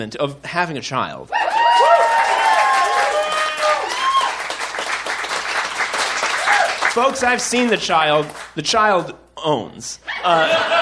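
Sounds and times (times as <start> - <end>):
speech: 0.0 - 2.4, 7.0 - 10.8
audience applause at a live show: 1.5 - 8.5
audience voices rising above clapping at a live show: 1.5 - 8.6
laughter: 10.0 - 10.8.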